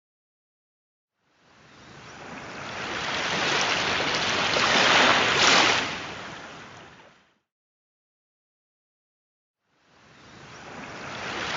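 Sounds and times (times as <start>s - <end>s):
ocean surf washing in as a long hissing swell: 1.6s - 6.9s, 10.2s - 11.5s.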